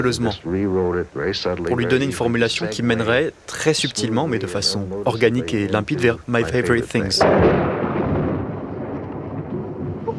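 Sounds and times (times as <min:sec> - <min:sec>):
speech: 0:00.0 - 0:07.6
deep continuous thunder rumbling: 0:07.2 - 0:10.1.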